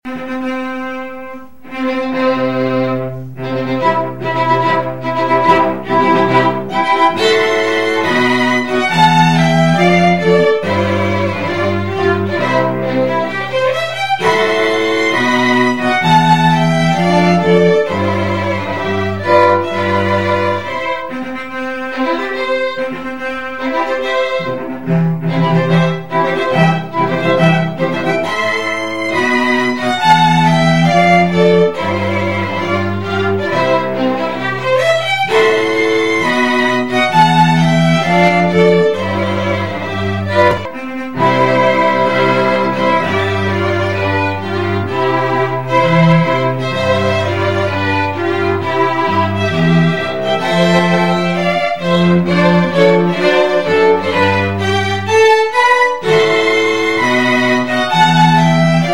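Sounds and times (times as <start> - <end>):
string quartet playing a wedding march: 0.0 - 58.9.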